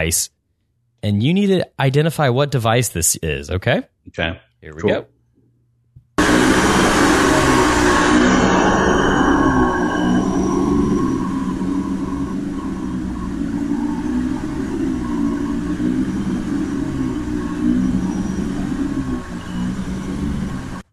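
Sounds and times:
speech: 0:00.0 - 0:00.4, 0:01.0 - 0:05.1
household vacuum cleaner running: 0:06.2 - 0:20.9.

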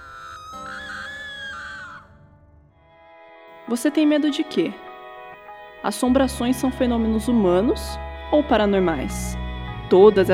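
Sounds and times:
shrill high-pitched scream of horror: 0:00.0 - 0:02.2
speech: 0:03.7 - 0:04.8, 0:05.8 - 0:10.3.

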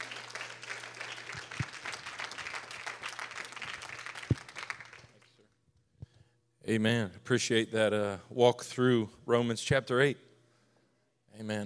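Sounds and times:
congregation clapping hands: 0:00.0 - 0:05.5
speech: 0:06.7 - 0:10.3, 0:11.4 - 0:11.6.

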